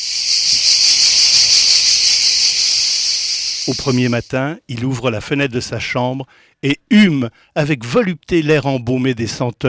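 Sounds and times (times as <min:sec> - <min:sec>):
cicadas buzzing: 0:00.0 - 0:04.4
speech: 0:03.7 - 0:09.6.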